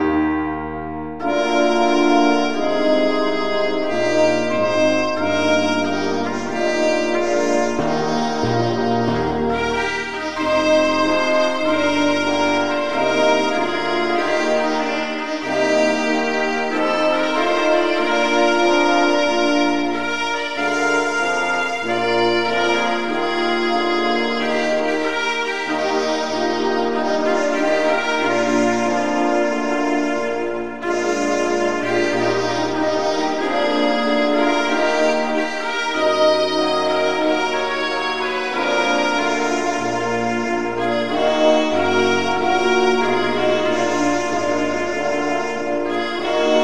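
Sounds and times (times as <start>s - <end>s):
national anthem music: 0.0s - 46.6s.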